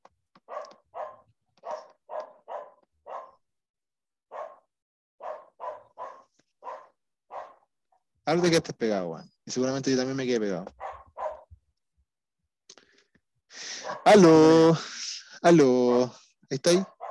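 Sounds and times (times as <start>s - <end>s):
dog barking: 0.4s - 3.4s, 4.3s - 7.7s, 10.7s - 11.5s, 13.8s - 14.2s, 16.8s - 17.0s
speech: 8.3s - 10.8s, 14.1s - 16.9s.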